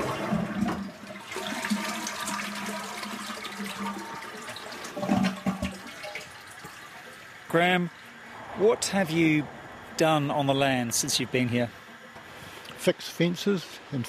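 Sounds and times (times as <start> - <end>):
toilet flushing: 0.0 - 8.3
speech: 7.6 - 8.0, 8.6 - 11.8, 12.8 - 14.0.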